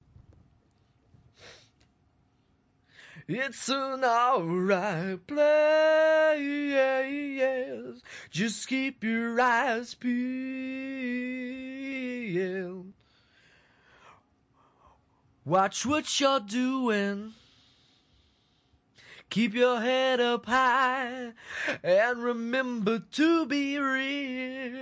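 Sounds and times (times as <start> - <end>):
male vocal singing a cappella at 180 bpm: 3.1 - 13.1, 15.4 - 17.6, 19.0 - 24.8.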